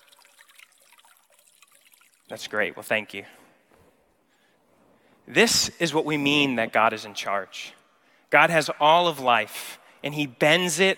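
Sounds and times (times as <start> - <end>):
faint bubbling splashes of water: 0.0 - 2.3
water trickling from a turned stream: 0.0 - 2.6
speech: 2.3 - 3.4, 5.3 - 10.9.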